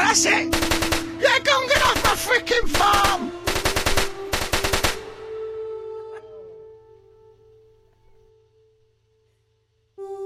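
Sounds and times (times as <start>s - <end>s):
speech: 0.1s - 3.3s
rapid machine-gun fire in a video game set on a farm: 0.5s - 5.4s.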